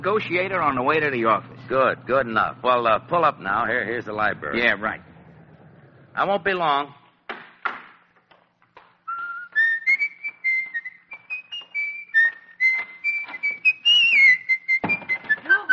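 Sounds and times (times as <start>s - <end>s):
speech: 0.0s - 5.1s, 6.2s - 7.0s
person whistling a lively tune in a public library: 9.1s - 15.7s.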